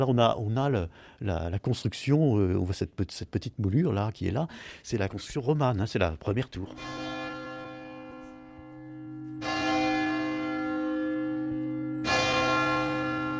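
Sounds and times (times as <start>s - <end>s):
speech: 0.0s - 7.1s
large deep cathedral bell ringing: 6.4s - 13.3s.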